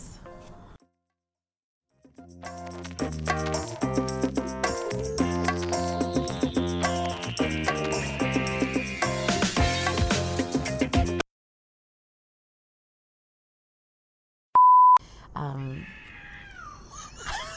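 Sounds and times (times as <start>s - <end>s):
burst of music: 1.9s - 11.2s
short beep: 14.6s - 15.0s
cat meowing in long wavering cries: 15.6s - 16.8s.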